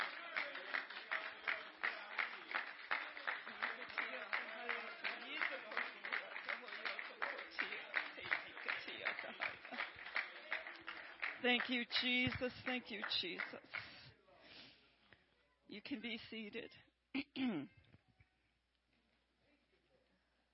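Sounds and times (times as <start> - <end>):
church audience clapping in praise of God: 0.0 - 14.1
speech: 11.4 - 13.8, 15.8 - 17.8.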